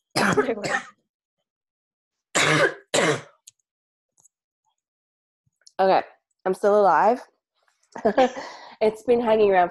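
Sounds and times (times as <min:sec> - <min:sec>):
person coughing: 0:00.1 - 0:01.0, 0:02.4 - 0:03.4
speech: 0:00.3 - 0:01.0, 0:05.8 - 0:07.3, 0:07.9 - 0:09.7.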